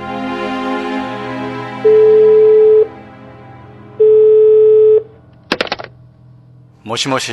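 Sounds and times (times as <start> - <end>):
low hum: 1.0 - 7.3
telephone ringback tones during outgoing call: 1.9 - 2.9, 4.0 - 5.1
speech: 6.9 - 7.3.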